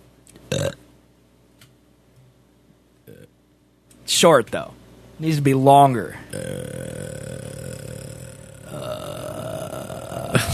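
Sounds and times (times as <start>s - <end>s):
person forcing a loud burp: 0.5s - 0.8s, 3.1s - 3.3s, 6.3s - 10.5s
speech: 0.5s - 0.8s, 4.2s - 6.9s
belch-like grunt: 6.3s - 10.5s.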